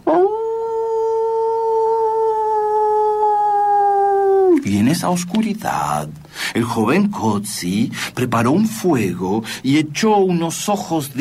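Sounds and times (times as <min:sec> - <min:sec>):
dog howling in a dark place: 0:00.0 - 0:04.6
speech: 0:05.0 - 0:11.1.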